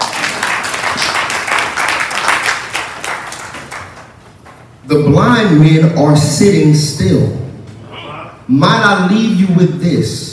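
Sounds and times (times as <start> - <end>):
large audience clapping in applause: 0.0 - 4.1
speech: 4.9 - 7.4, 8.5 - 10.3.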